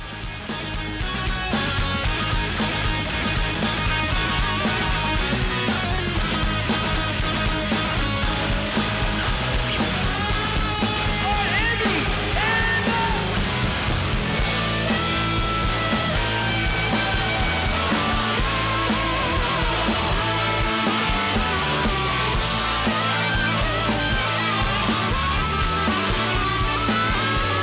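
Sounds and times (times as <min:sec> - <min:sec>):
dense loud rock band jam with drums and guitars: 0:00.0 - 0:27.6.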